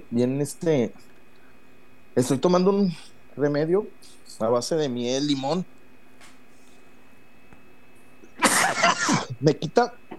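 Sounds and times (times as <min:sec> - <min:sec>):
speech: 0:00.1 - 0:01.1, 0:02.2 - 0:05.8, 0:09.4 - 0:10.0
harsh coughing fit from a speaker with a sore throat: 0:08.4 - 0:09.4.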